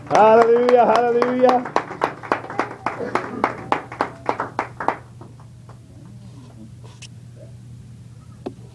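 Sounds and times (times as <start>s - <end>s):
church audience clapping in praise at a morning service: 0.0s - 5.8s
low constant hum: 0.0s - 8.7s
speech: 0.1s - 1.8s.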